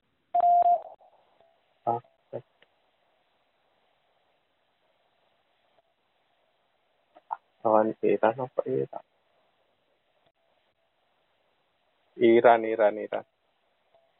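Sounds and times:
short electronic answer prompt beep in a quiz: 0.4s - 1.0s
speech: 7.9s - 9.2s, 12.2s - 13.4s.

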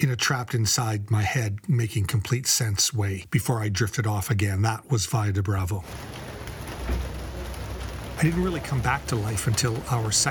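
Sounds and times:
speech: 0.0s - 6.3s, 8.2s - 10.2s
heavy rain pouring on Calle Colima in Mexico City: 5.8s - 10.2s.

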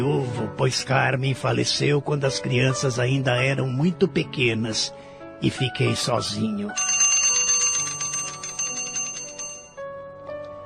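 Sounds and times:
speech: 0.0s - 7.0s
small handbell ringing for lunch: 6.8s - 9.8s.

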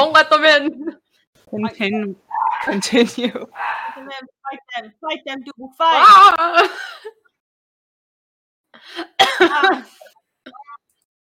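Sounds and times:
speech: 0.1s - 7.2s, 8.8s - 10.1s
harsh coughing: 9.0s - 10.8s.

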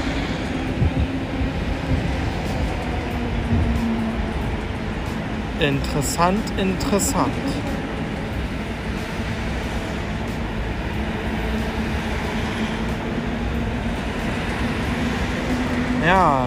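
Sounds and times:
vehicles driving off a ferry at Puttgarden: 0.0s - 16.4s
speech: 5.6s - 7.6s.

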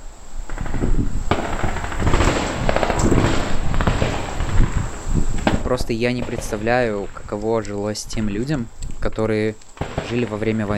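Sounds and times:
hiss: 0.0s - 10.7s
distant gunfire from military exercises: 0.5s - 7.2s, 9.8s - 10.7s
speech: 5.7s - 10.7s.

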